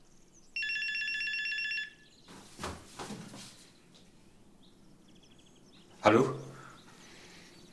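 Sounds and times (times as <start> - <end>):
mobile phone ringing with a bright electronic tone: 0.6 - 2.1
soft rustling and handling noises: 2.3 - 4.1
speech: 6.0 - 6.4.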